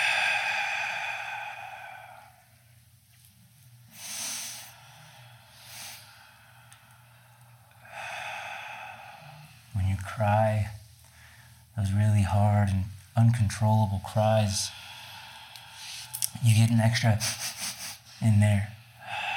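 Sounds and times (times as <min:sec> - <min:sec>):
deep breaths drawn in through the nose during a guided breathing meditation: 0:00.0 - 0:02.7, 0:03.9 - 0:09.8, 0:14.7 - 0:16.3, 0:18.8 - 0:19.3
speech: 0:10.2 - 0:10.8, 0:11.8 - 0:14.8, 0:16.4 - 0:17.6, 0:18.2 - 0:18.8.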